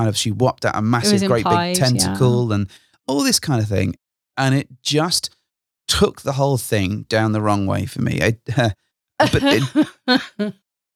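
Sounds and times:
speech: 0.0 - 10.6
laughter: 0.9 - 2.7, 7.4 - 10.5
person coughing and clearing their throat: 1.1 - 2.3, 9.4 - 10.3.

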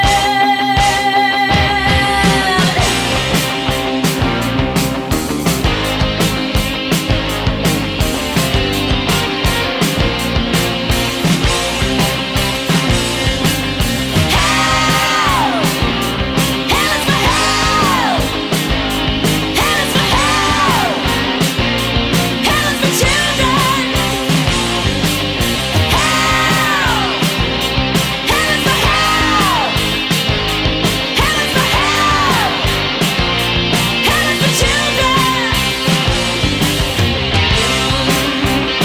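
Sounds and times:
female singer wailing into scream-like cries: 0.0 - 2.9, 14.3 - 15.8, 16.7 - 18.3, 22.4 - 24.0, 25.9 - 27.2, 28.3 - 29.8, 31.2 - 32.6, 34.0 - 35.6
distorted guitars: 0.0 - 38.8
driving drums: 0.0 - 38.8
loud dense rock music: 0.0 - 38.8.

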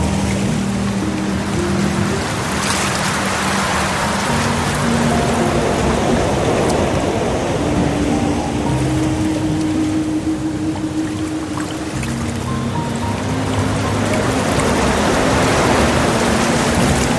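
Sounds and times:
gentle water streams: 0.0 - 17.1
soft sustained relaxing piano music: 0.0 - 17.1.

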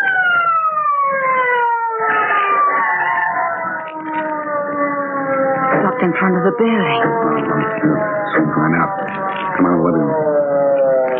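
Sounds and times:
police car siren winding down: 0.0 - 11.1
low rumbling traffic noise: 0.1 - 11.1
speech: 6.0 - 10.4.

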